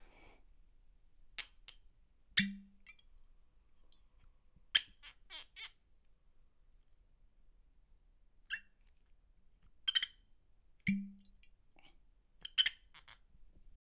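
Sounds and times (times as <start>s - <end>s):
cork: 2.4s - 3.1s, 9.9s - 10.2s, 10.9s - 13.1s.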